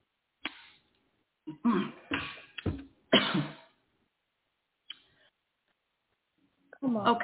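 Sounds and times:
man coughing: 1.5s - 3.7s.

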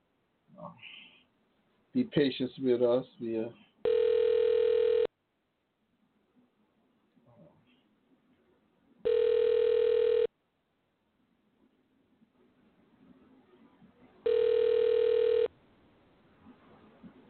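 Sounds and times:
faint noise: 0.0s - 17.2s
speech: 2.0s - 3.7s
outgoing call telephone ringback tone: 3.8s - 5.1s, 9.0s - 10.3s, 14.2s - 15.5s.

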